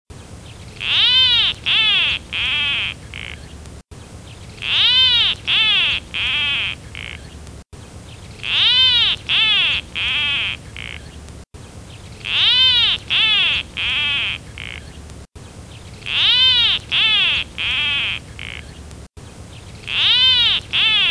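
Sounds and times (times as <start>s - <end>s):
Peruvian plantcutter calling: 0.6s - 3.6s, 4.3s - 7.4s, 8.3s - 11.2s, 12.1s - 15.0s, 15.9s - 18.9s, 19.7s - 21.0s.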